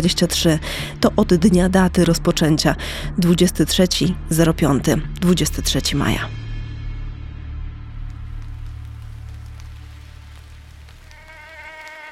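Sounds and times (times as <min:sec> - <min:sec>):
speech: 0:00.0 - 0:06.4
Anopheles maculipennis mosquito buzzing: 0:11.0 - 0:12.1.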